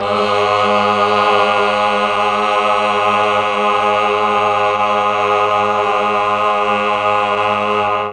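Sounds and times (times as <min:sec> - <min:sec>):
Mellotron 8VOICE CHOIR G#1 note: 0:00.0 - 0:08.1.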